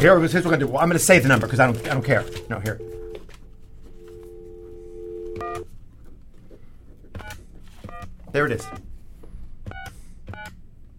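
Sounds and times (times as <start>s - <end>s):
speech: 0.0s - 3.0s, 8.3s - 8.9s
low steady hum: 0.0s - 10.9s
very cheap phone keypad dialing tones: 1.4s - 3.2s, 4.0s - 5.6s.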